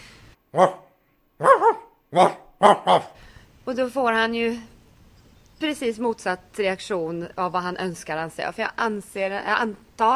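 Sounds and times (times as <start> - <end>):
speech: 0.5 - 0.8, 2.1 - 3.0, 3.8 - 4.7, 5.6 - 10.1
man imitating a dog barking: 0.5 - 3.2.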